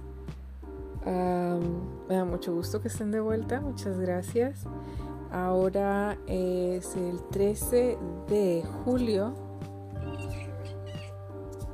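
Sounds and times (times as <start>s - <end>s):
speech: 1.0s - 9.4s
female pet cat meowing: 10.1s - 11.2s.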